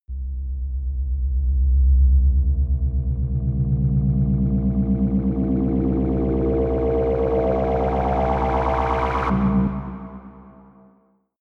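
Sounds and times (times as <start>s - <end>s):
deep rising whirring hum: 0.3s - 9.4s.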